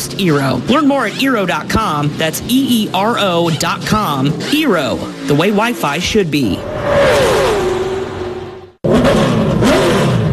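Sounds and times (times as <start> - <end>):
NASCAR race car engines revving: 0.0 - 10.3
speech: 0.1 - 7.3.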